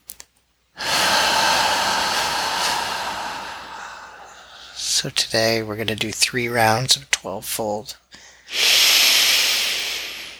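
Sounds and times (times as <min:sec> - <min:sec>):
deep lower belly breathing: 0:00.8 - 0:05.2, 0:08.1 - 0:10.3
speech: 0:05.0 - 0:08.8.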